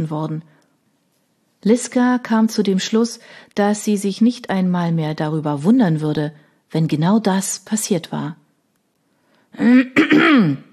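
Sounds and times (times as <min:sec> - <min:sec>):
speech: 0:00.0 - 0:00.6, 0:01.6 - 0:08.4, 0:09.5 - 0:10.7
person clearing throat: 0:09.6 - 0:10.7.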